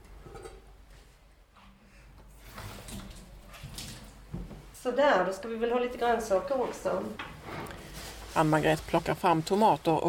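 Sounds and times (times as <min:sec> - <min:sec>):
water pouring into a kitchen sink: 0:02.4 - 0:04.3
speech: 0:04.8 - 0:07.3, 0:08.4 - 0:10.0.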